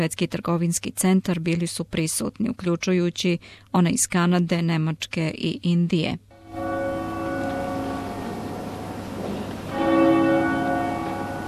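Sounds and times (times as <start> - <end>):
speech: 0.0 - 6.7
church bell tolling: 6.4 - 11.4.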